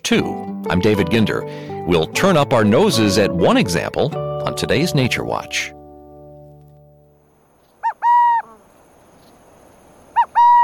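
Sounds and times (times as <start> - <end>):
speech: 0.1 - 5.8
burrowing owl calling: 7.6 - 10.6.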